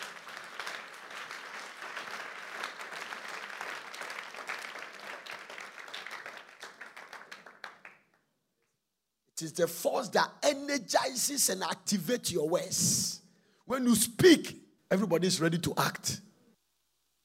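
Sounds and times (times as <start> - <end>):
congregation clapping: 0.0 - 8.4
speech: 9.4 - 16.2.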